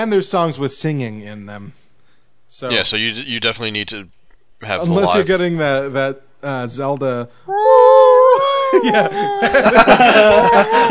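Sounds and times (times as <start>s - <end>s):
speech: 0.0s - 1.8s, 2.5s - 7.8s, 8.7s - 10.9s
person imitating wolf howling: 7.5s - 10.9s
person breathy laughter: 8.4s - 10.9s.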